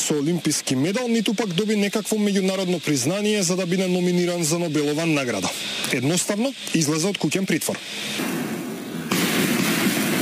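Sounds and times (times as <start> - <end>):
fireworks and smoke bombs crackling at a street celebration: 0.0 - 10.1
speech: 0.1 - 8.4
fireworks and smoke bombs bang at a street celebration: 8.2 - 10.1.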